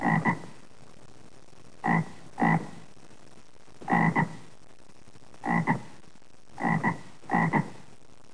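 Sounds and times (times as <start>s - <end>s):
frog croaking: 0.0s - 0.6s, 1.8s - 2.9s, 3.8s - 4.5s, 5.4s - 7.9s.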